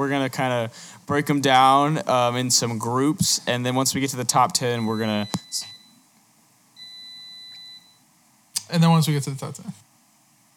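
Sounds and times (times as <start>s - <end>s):
speech: 0.0s - 5.7s, 8.7s - 9.9s
air fryer beeping when done: 4.8s - 6.0s, 6.8s - 8.0s.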